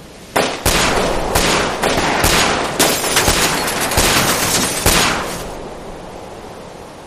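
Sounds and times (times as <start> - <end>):
gunfire of guards shooting at a man by a bus in the snow: 0.4 - 5.6.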